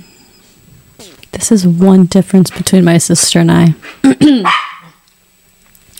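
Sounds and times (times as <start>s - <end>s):
speech: 1.5s - 4.7s
female dog barking: 4.4s - 5.0s.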